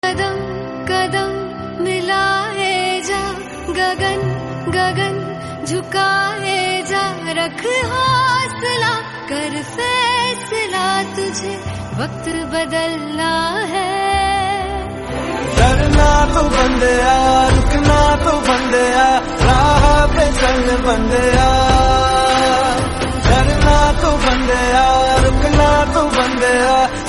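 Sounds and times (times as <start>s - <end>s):
Hindi song: 0.0s - 27.0s.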